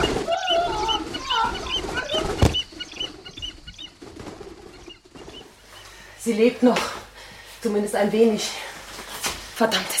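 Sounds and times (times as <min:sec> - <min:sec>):
trained bird squawking with hood just taken off: 0:00.0 - 0:04.0
speech: 0:06.3 - 0:07.0, 0:07.6 - 0:08.7, 0:09.6 - 0:09.9.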